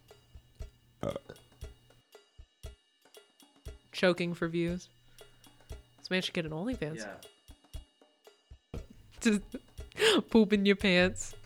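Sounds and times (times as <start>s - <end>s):
person burping: 1.0s - 1.4s
speech: 4.0s - 5.0s, 6.1s - 7.4s, 9.2s - 11.4s.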